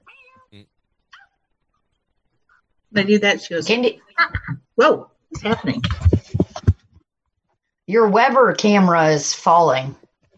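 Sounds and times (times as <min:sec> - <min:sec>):
female cat meowing: 0:00.0 - 0:00.6
speech: 0:00.5 - 0:00.8, 0:02.9 - 0:06.0, 0:07.9 - 0:10.0.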